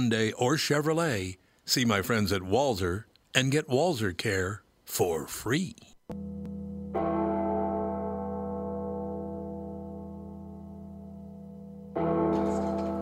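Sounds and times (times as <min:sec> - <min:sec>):
speech: 0:00.0 - 0:06.4
heavy church bell tolling: 0:06.1 - 0:13.0.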